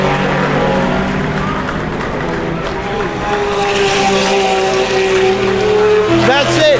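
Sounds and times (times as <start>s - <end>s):
endurance race cars passing at speed: 0.0s - 6.7s.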